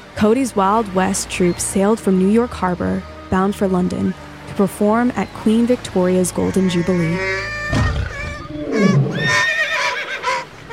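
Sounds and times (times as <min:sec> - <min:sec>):
speech: 0:00.2 - 0:07.5
horse neighing: 0:06.4 - 0:10.7.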